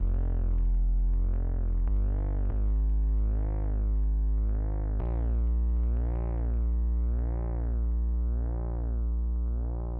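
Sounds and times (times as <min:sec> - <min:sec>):
viral hip hop bass: 0:00.0 - 0:09.9.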